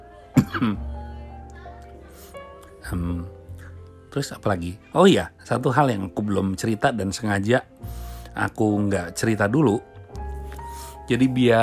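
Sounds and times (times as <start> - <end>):
person coughing: 0.4 - 0.9
speech: 0.6 - 0.9, 2.9 - 3.4, 4.2 - 9.9, 11.1 - 11.6.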